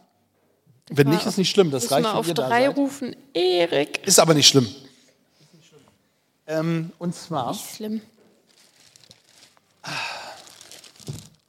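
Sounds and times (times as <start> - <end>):
speech: 0.9 - 4.8, 6.5 - 8.1
large sheet of paper crinkling: 8.2 - 11.4.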